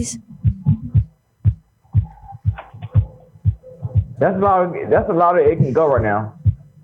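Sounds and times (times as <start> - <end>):
speech: 0.0 - 0.3, 4.2 - 6.4
low thumping kick drums in a looping rhythm: 0.0 - 6.7
homemade music beat from phone speaker: 0.4 - 6.6.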